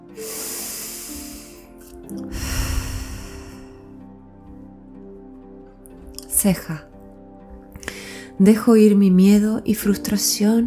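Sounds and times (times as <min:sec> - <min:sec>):
deep breath in through nose and out through mouth: 0:00.1 - 0:04.0, 0:07.8 - 0:08.3
speech: 0:02.1 - 0:02.5, 0:06.4 - 0:06.9, 0:08.4 - 0:10.6.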